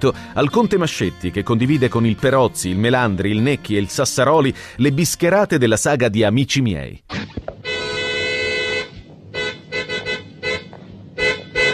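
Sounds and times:
speech: 0:00.0 - 0:07.3
very sensitive car horn honking, set off by touching it with an elbow: 0:07.6 - 0:11.7.

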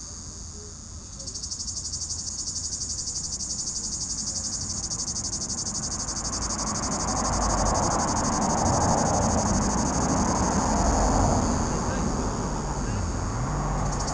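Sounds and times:
cicada in an apple tree buzzing in fast regular pulses: 0:00.0 - 0:14.1
broad passing noise like traffic: 0:07.4 - 0:14.1.

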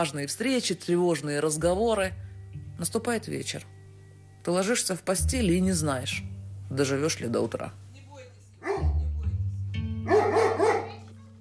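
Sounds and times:
speech: 0:00.0 - 0:03.8, 0:04.4 - 0:07.8
low steady tones: 0:01.4 - 0:08.0
pet dog barking: 0:08.6 - 0:09.0, 0:10.1 - 0:11.1.

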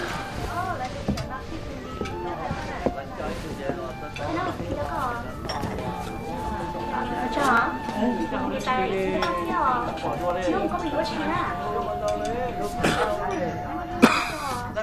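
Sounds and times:
faint voices: 0:00.0 - 0:14.8
clinking of tea dishes: 0:05.3 - 0:06.2, 0:09.1 - 0:14.3
man coughing up blood into his hand: 0:12.8 - 0:13.2, 0:14.0 - 0:14.5.

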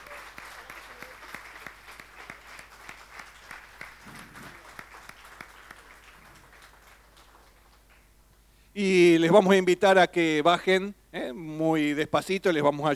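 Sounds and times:
church congregation applauding: 0:00.0 - 0:08.1
speech: 0:08.8 - 0:12.9.

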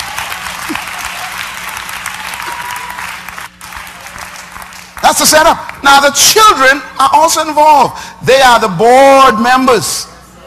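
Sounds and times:
women clapping fast together: 0:00.0 - 0:05.8
speech: 0:05.1 - 0:10.1.

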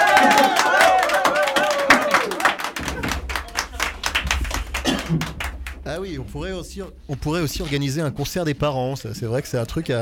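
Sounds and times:
people shouting and cheering: 0:00.0 - 0:03.8
parents applauding at a school evening performance: 0:00.0 - 0:05.8
speech: 0:05.1 - 0:10.0.

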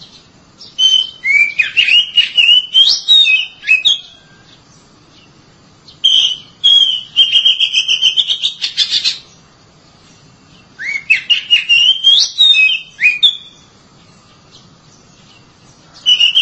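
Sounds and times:
Oriental magpie-robin singing varied sweet whistles and slurred notes: 0:00.0 - 0:09.5, 0:10.1 - 0:16.4.

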